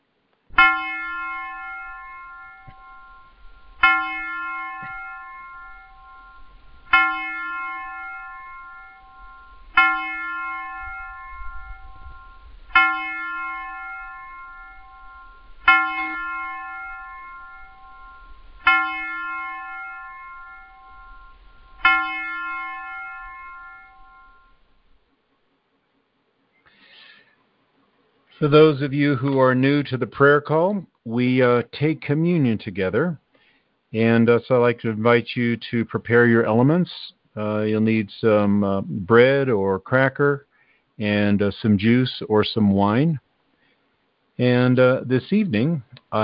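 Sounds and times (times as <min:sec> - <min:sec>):
single bell being struck: 0:00.6 - 0:24.7
speech: 0:28.4 - 0:33.2, 0:33.9 - 0:43.2, 0:44.4 - 0:46.2.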